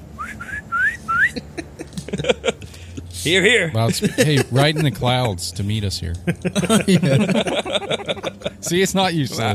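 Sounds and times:
person whistling short rising notes to call people over: 0.2 - 1.4
laughter: 1.1 - 9.5
speech: 3.2 - 9.5.

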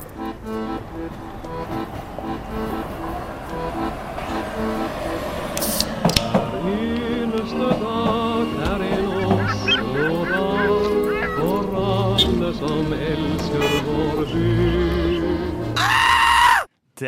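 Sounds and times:
low musical drone: 0.0 - 15.8
honking squawking tones: 0.0 - 16.6
laughter: 8.4 - 13.8
loud shrill scream: 15.8 - 16.7.

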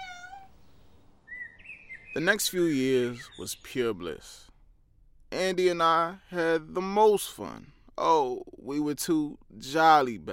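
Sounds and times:
kitten meowing: 0.0 - 0.5
speech: 2.2 - 4.5, 5.5 - 10.3.

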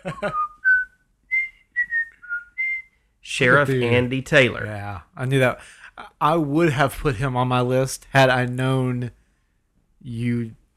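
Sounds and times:
speech: 0.0 - 0.5, 3.4 - 9.2, 10.0 - 10.7
person whistling a theme melody from a TV show: 0.1 - 3.0.

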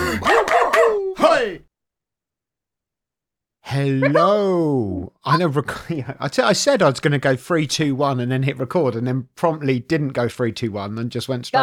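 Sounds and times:
dog barking: 0.2 - 1.0
speech: 3.7 - 11.6.

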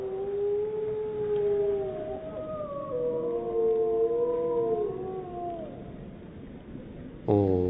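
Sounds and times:
wolves howling: 0.0 - 5.9.

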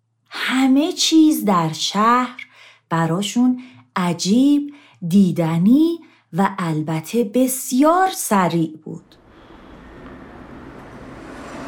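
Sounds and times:
speech: 0.6 - 9.2
car passing by quickly: 9.1 - 11.6.

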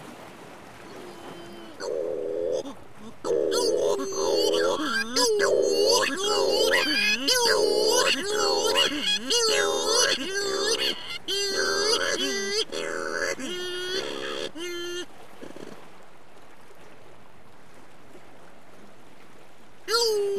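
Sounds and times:
Cory's shearwaters wailing calls at night: 0.4 - 18.8, 19.8 - 20.3.

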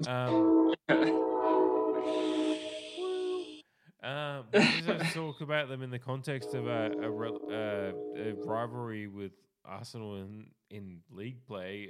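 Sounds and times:
speech: 0.0 - 1.2, 4.6 - 11.8
passing train horn: 0.2 - 3.4, 6.3 - 8.8.

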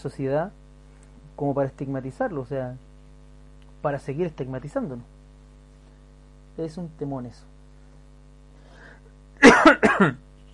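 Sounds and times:
speech: 0.0 - 0.6, 1.4 - 2.9, 3.8 - 5.2, 6.6 - 7.5, 9.7 - 10.5
person coughing raspily: 9.4 - 10.5.

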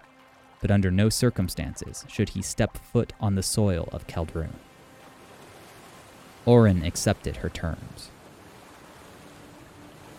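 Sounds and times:
speech: 0.6 - 4.7, 6.4 - 8.2
ocean surf: 3.6 - 10.1.

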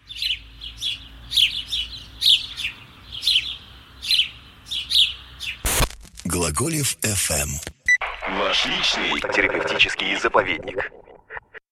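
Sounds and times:
house sparrow chirping: 0.0 - 5.6
speech: 6.6 - 11.0.

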